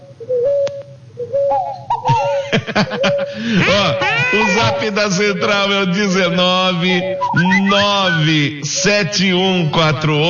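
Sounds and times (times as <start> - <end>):
small bird singing whistled notes: 0.0 - 3.4, 5.9 - 9.6
faint low hum: 0.0 - 10.2
laughter: 2.1 - 5.4, 7.4 - 8.2
speech: 2.6 - 10.2.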